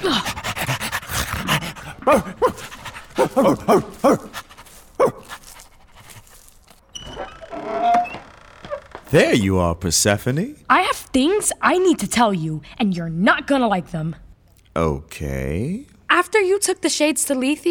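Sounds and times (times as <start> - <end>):
dog panting in a video game: 0.0 - 6.7
speech: 2.1 - 2.6, 3.3 - 4.3, 9.1 - 14.2, 14.8 - 17.7.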